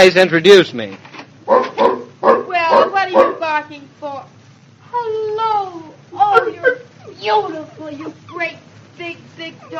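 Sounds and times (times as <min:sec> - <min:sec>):
speech: 0:00.0 - 0:02.0, 0:05.0 - 0:09.7
big dog barking: 0:01.5 - 0:03.5.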